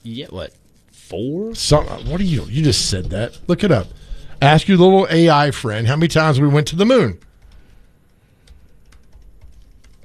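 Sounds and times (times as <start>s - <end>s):
speech: 0.0s - 7.3s
low hum: 0.0s - 10.0s
typing on a computer keyboard: 8.4s - 10.0s.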